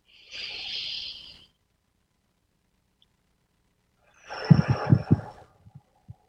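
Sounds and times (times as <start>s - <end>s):
deep breath in and out during a guided relaxation exercise: 0.1s - 1.6s, 4.1s - 6.2s.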